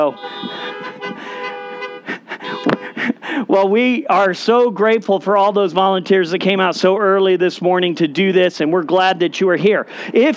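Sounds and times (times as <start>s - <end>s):
speech: 0.0s - 1.0s, 3.5s - 10.3s
car horns honking at a church service: 0.0s - 3.4s.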